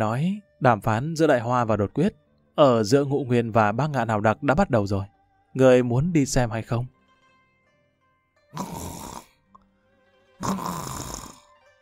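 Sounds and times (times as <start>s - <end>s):
speech: 0.0s - 7.0s, 8.5s - 8.8s, 10.4s - 10.8s
man snoring softly in deep sleep: 8.6s - 9.4s, 10.4s - 11.5s.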